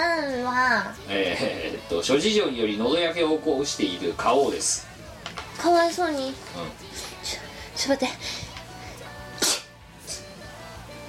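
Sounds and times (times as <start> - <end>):
speech: 0.6 - 4.9, 5.6 - 8.4
person sneezing: 9.4 - 9.7.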